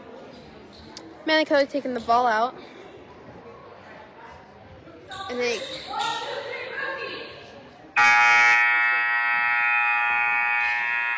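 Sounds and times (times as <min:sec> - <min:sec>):
speech: 0:01.2 - 0:02.7, 0:05.3 - 0:06.4, 0:08.0 - 0:08.6
long buzzer at a basketball game: 0:08.0 - 0:11.1.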